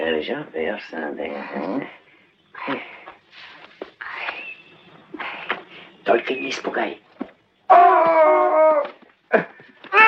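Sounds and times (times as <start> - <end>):
speech: 0.2 - 2.0, 2.6 - 3.5, 6.1 - 7.0
dog howling: 7.7 - 8.9.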